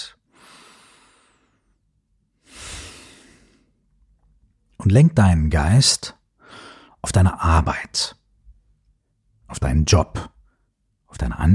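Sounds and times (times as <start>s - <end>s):
deep breath in and out during a guided meditation exercise: 0.2s - 3.8s, 6.4s - 7.0s
speech: 4.8s - 6.2s, 7.0s - 8.2s, 9.5s - 10.3s, 11.1s - 11.5s.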